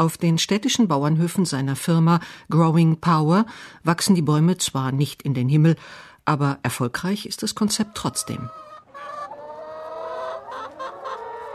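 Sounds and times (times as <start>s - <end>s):
speech: 0.0s - 8.6s
large flock of chickens clucking inside a plastic film greenhouse: 7.5s - 11.5s.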